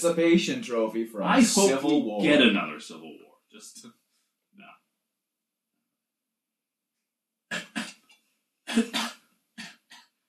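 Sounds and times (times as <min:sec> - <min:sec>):
speech: 0:00.0 - 0:04.0, 0:08.7 - 0:09.1
person coughing: 0:08.7 - 0:10.0.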